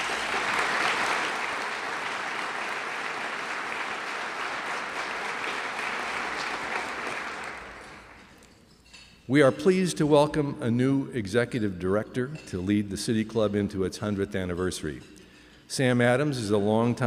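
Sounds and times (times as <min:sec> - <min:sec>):
audience at a civic forum event applauding: 0:00.0 - 0:08.5
speech: 0:09.3 - 0:17.0.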